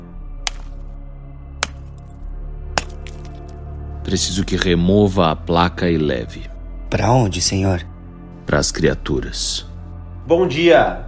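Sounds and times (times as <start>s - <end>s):
ice pick chipping into something hard: 0.4s - 0.8s, 1.6s - 2.1s, 2.7s - 3.6s
speech: 4.1s - 7.9s, 8.5s - 9.7s, 10.3s - 11.0s.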